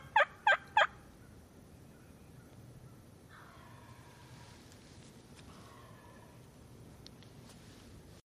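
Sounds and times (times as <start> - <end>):
turkey gobbling from an online video: 0.0 - 1.0, 3.3 - 4.4, 5.6 - 6.4.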